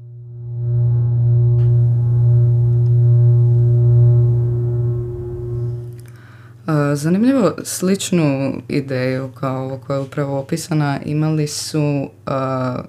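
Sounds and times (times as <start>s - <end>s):
early computer playing programmed low buzzy electronic note: 0.0s - 6.1s
speech: 7.0s - 12.8s.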